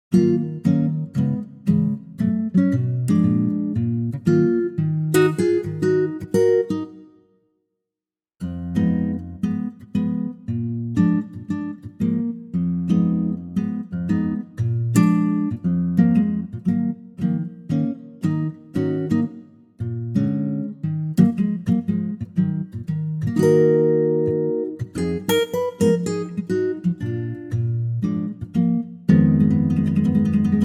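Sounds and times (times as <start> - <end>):
acoustic guitar in E flat minor: 0.1 - 7.3, 8.4 - 30.6.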